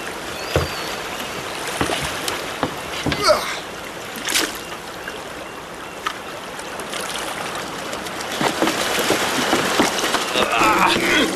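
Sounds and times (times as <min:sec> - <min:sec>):
water sloshing around a small rowboat at dawn: 0:00.0 - 0:11.3.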